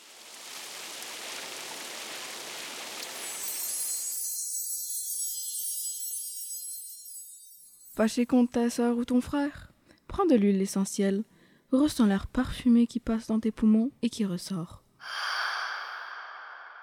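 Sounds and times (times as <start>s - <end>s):
steady rain hissing: 0.0s - 4.6s
speech: 8.0s - 15.2s.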